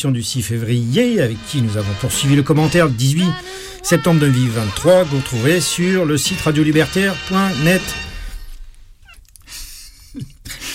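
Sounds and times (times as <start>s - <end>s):
speech: 0.0s - 8.1s
cat giving short strained meows: 9.0s - 9.3s.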